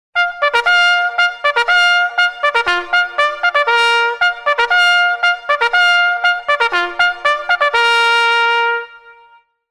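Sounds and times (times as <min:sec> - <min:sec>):
bugle call: 0:00.2 - 0:09.3.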